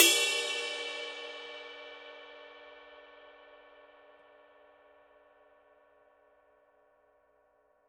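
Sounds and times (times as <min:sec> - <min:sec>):
dark dry ride cymbal bell: 0:00.0 - 0:04.6.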